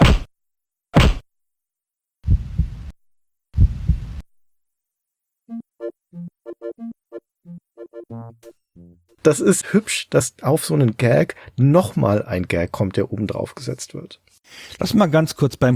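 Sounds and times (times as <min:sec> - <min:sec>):
heavy heart massage thumps: 0:02.2 - 0:02.9, 0:03.6 - 0:04.2
short pulsing tonal heartbeat beeps: 0:06.2 - 0:09.0
speech: 0:09.2 - 0:15.7.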